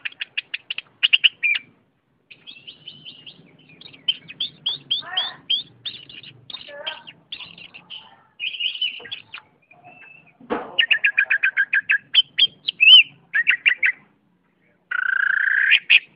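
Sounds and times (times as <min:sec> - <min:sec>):
Oriental magpie-robin song of varied whistled phrases: 0:00.0 - 0:01.7, 0:02.3 - 0:14.1, 0:14.9 - 0:16.1
brief thud: 0:10.4 - 0:10.8.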